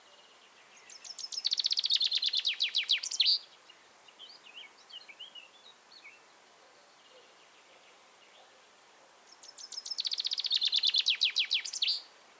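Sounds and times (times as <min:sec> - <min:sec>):
common chaffinch Fringilla coelebs song: 0:00.0 - 0:06.2, 0:09.3 - 0:12.3.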